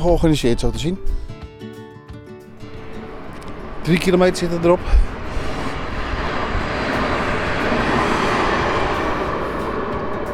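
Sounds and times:
speech: 0.0s - 1.4s, 3.9s - 5.1s
train rushing past: 2.6s - 10.3s.

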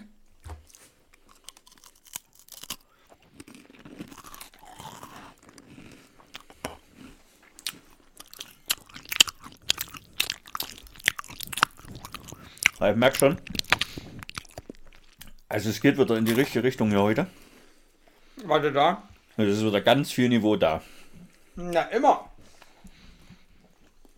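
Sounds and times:
crunchy food chewed up in an ASMR-style session: 0.4s - 17.4s, 22.5s - 24.1s
speech: 12.8s - 13.6s, 15.6s - 17.4s, 18.5s - 21.0s, 21.6s - 22.3s.

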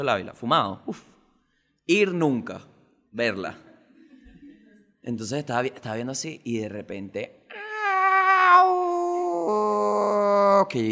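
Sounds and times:
speech: 0.0s - 1.1s, 1.9s - 3.7s, 5.0s - 7.4s, 9.5s - 9.8s, 10.6s - 10.9s
cat yowling in pain at night: 7.5s - 10.6s.

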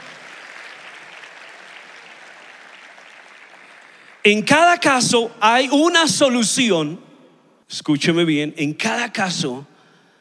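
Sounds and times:
audience applauding: 0.0s - 4.3s
speech: 4.2s - 7.1s, 7.7s - 9.7s.

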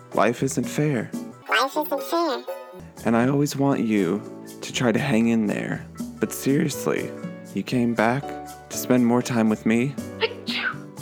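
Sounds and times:
speech: 0.2s - 10.1s
sneeze: 10.2s - 10.8s.

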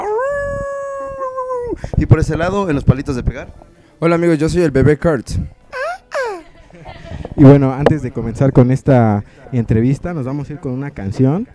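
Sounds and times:
rock and roll band member imitating a wolf howl: 0.0s - 1.8s
speech: 1.8s - 5.6s, 7.4s - 11.5s.

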